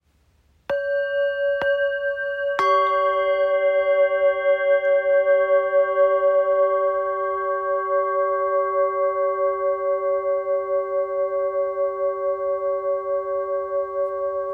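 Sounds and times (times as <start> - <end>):
set of small suspended bowls ringing: 0.7 - 14.5.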